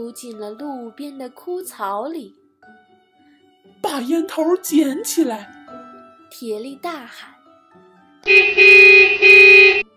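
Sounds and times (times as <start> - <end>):
speech: 0.0 - 2.8, 3.8 - 5.6, 6.3 - 7.3, 8.2 - 9.9
car horn honking on a roadside: 8.2 - 9.9.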